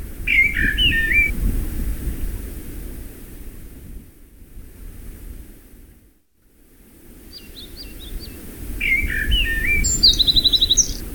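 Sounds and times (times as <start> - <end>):
birds: 0.3 - 1.3, 7.2 - 11.0
breeze: 0.3 - 1.3, 6.8 - 11.0.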